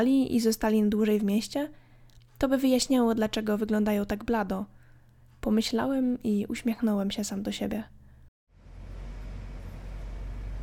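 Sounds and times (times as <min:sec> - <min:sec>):
speech: 0:00.0 - 0:01.8, 0:02.4 - 0:04.8, 0:05.4 - 0:08.0
road roar of a large vehicle driving along: 0:08.5 - 0:10.6
bus engine rumbling while driving along a road: 0:08.6 - 0:10.6.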